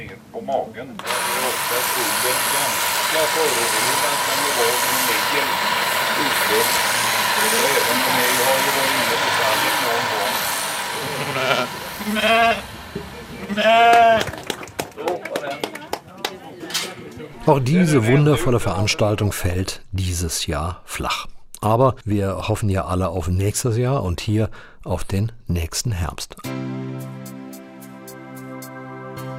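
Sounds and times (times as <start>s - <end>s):
speech: 0.2s - 14.4s, 17.5s - 26.6s
electric shears buzzing while shearing sheep: 1.0s - 14.3s
outdoor crowd murmur: 2.8s - 14.8s
sheep bleating: 11.0s - 12.7s, 13.5s - 14.3s.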